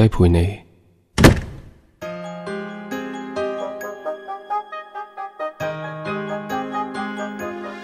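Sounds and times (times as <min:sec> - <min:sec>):
speech: 0:00.0 - 0:00.6
door slamming shut as someone goes out: 0:01.2 - 0:01.8
melodic music with soft pulsing rhythm: 0:02.0 - 0:07.8.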